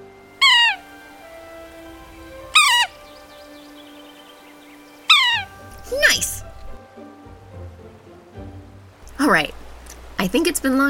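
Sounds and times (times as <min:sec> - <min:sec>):
sapsucker giving nasal mewing calls: 0:00.0 - 0:06.8
speech: 0:05.9 - 0:06.4, 0:09.3 - 0:09.6, 0:10.2 - 0:10.8.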